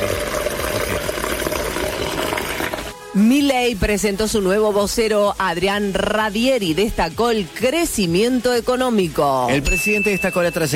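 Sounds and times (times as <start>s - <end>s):
water running from a tap: 0.0s - 3.0s
speech: 3.2s - 10.7s.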